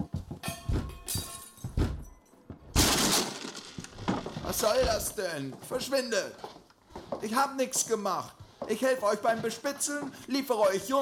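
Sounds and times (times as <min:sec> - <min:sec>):
door being broken open by force: 0:02.7 - 0:05.2
speech: 0:04.6 - 0:06.5, 0:07.2 - 0:11.0.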